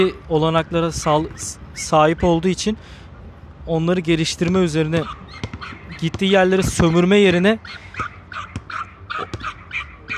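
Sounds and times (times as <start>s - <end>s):
speech: 0.0s - 3.0s, 3.7s - 8.4s
dog yipping and whimpering: 5.0s - 10.1s.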